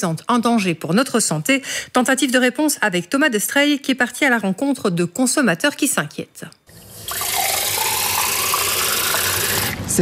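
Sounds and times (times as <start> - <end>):
speech: 0.0 - 7.4
water running from a kitchen tap: 6.7 - 9.8.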